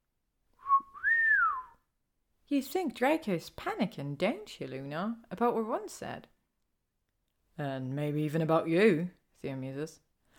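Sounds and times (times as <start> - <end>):
low human whistle: 0.6 - 1.9
speech: 2.5 - 6.3, 7.6 - 10.0.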